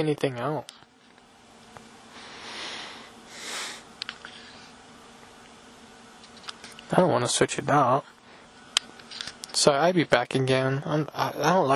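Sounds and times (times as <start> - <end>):
speech: 0.0 - 0.8, 6.9 - 8.1, 9.6 - 11.7
nose blowing and sniffing: 2.2 - 3.9.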